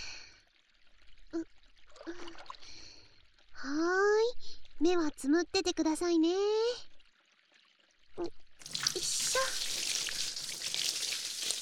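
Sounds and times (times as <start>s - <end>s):
speech: 1.4s - 1.6s, 4.8s - 6.9s, 8.2s - 8.4s
hot water pouring over hair during a hair wash: 8.6s - 11.6s.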